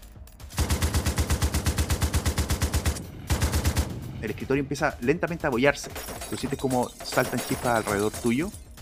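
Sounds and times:
machine gun firing rapid bursts: 0.5 - 4.1, 5.6 - 8.4
speech: 4.2 - 8.7.

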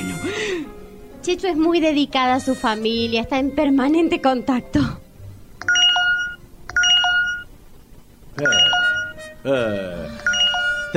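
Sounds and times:
speech: 0.6 - 5.0, 9.4 - 10.3
phone electronic notification chime: 5.6 - 7.5, 8.4 - 9.3, 10.2 - 10.9.

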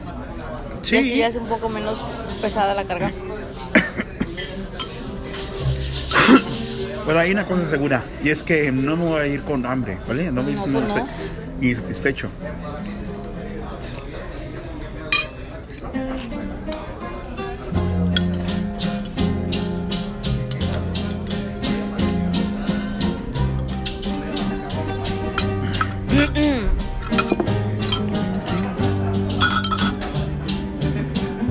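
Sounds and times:
murmur of voices: 0.0 - 31.4
speech: 0.8 - 3.9, 7.1 - 13.0
forks and knives clinking against plates: 4.8 - 6.6, 15.1 - 15.4, 18.1 - 18.5, 25.2 - 26.4, 27.0 - 28.7, 29.4 - 30.2.

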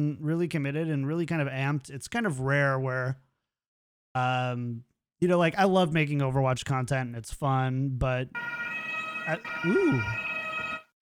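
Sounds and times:
speech: 0.0 - 3.3, 4.2 - 8.6, 9.3 - 10.3
German emergency vehicle two-tone siren wail: 8.4 - 10.9.

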